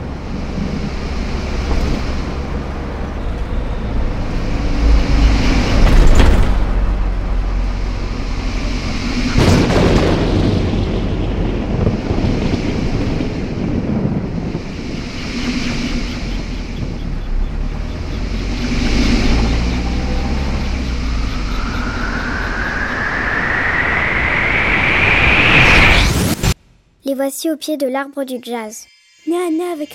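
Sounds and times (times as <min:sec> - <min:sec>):
bus engine rumbling with low drone: 0:00.0 - 0:12.5, 0:16.1 - 0:26.1
storm wind roaring and howling: 0:00.0 - 0:26.5
speech: 0:27.2 - 0:29.9.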